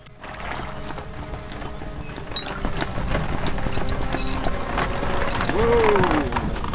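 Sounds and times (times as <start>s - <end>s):
horse hooves clip-clopping: 0.0s - 6.7s
horse-drawn cart rattling and creaking: 0.0s - 6.7s.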